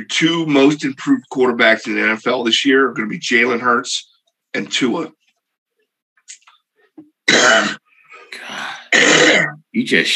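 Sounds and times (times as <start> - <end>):
speech: 0.0 - 5.2, 7.4 - 10.1
person coughing: 7.3 - 7.8, 8.9 - 9.6
throat clearing: 7.3 - 8.3, 8.9 - 9.6.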